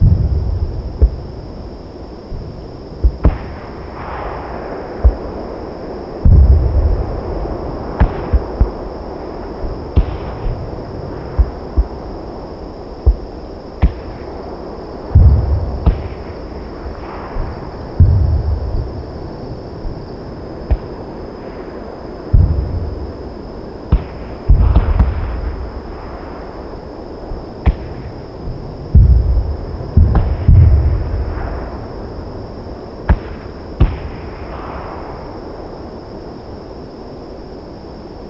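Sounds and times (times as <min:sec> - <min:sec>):
night battle ambience: 0:00.0 - 0:38.2.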